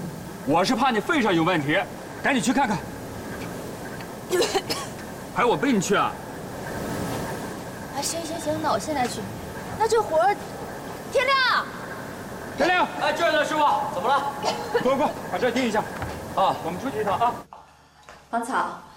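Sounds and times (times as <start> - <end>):
steady low hiss: 0.0 - 18.9
voices speaking: 0.3 - 17.5
man coughing: 4.3 - 5.0, 14.4 - 15.1.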